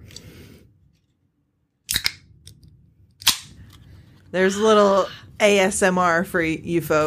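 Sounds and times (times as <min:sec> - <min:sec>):
can of wild berry hard seltzer cracking open: 0:01.9 - 0:02.2
speech: 0:04.3 - 0:07.0.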